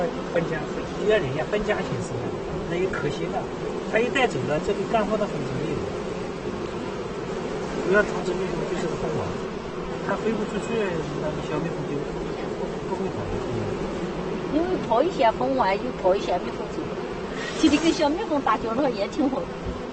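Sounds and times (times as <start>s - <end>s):
honeybees buzzing around hives at apiary: 0.0s - 19.9s.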